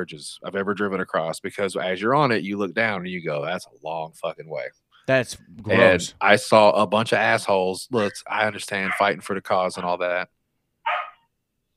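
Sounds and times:
speech: 0:00.0 - 0:10.4
sharp dog bark: 0:08.8 - 0:09.2, 0:10.9 - 0:11.2.

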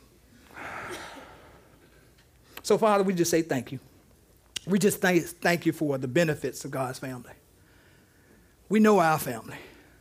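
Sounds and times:
church congregation drawing a deep breath together during a service: 0:00.4 - 0:02.6, 0:07.6 - 0:08.6
speech: 0:02.7 - 0:03.9, 0:04.7 - 0:07.4, 0:08.7 - 0:09.7.

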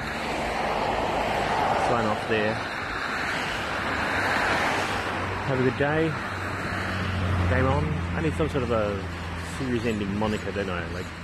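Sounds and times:
street traffic passing at a bus stop: 0:00.0 - 0:11.2
speech: 0:01.9 - 0:02.8, 0:05.5 - 0:06.3, 0:07.5 - 0:11.2.

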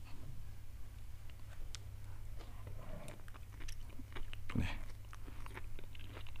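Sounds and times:
steady low hum: 0:00.0 - 0:06.3
biting and chewing a water-boiled wild mountain vegetable stalk: 0:03.1 - 0:06.3.

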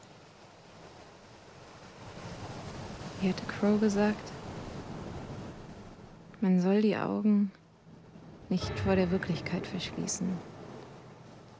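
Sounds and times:
ocean waves breaking and receding: 0:00.2 - 0:06.3, 0:08.0 - 0:11.5
speech: 0:03.2 - 0:04.3, 0:06.4 - 0:07.6, 0:08.5 - 0:10.5.

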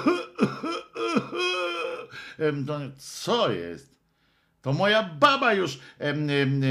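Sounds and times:
small throaty coughs: 0:00.0 - 0:02.1
speech: 0:02.4 - 0:04.0, 0:04.6 - 0:06.6.

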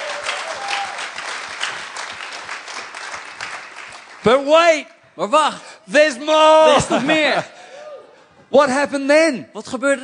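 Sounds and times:
audience applause: 0:00.0 - 0:04.5
speech: 0:04.2 - 0:07.6, 0:08.5 - 0:10.0.

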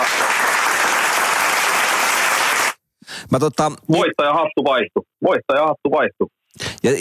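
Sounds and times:
loud dense applause: 0:00.0 - 0:02.8
speech: 0:03.3 - 0:06.9.

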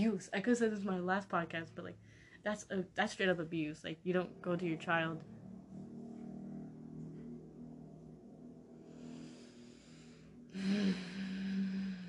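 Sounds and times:
speech: 0:00.0 - 0:05.4
loud car or motorcycle engine passing: 0:01.4 - 0:12.0.

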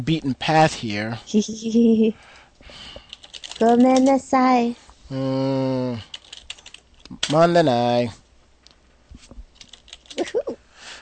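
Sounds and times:
speech: 0:00.0 - 0:03.0, 0:03.6 - 0:06.1, 0:07.1 - 0:08.2
fingers typing on a computer keyboard: 0:03.0 - 0:04.1, 0:06.1 - 0:07.4, 0:09.6 - 0:10.2.

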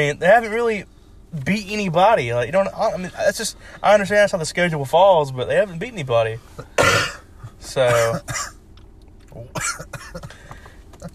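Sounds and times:
speech: 0:00.0 - 0:07.0, 0:07.6 - 0:08.6, 0:09.4 - 0:10.4
person coughing on a winter day: 0:06.6 - 0:08.6, 0:09.5 - 0:10.4.

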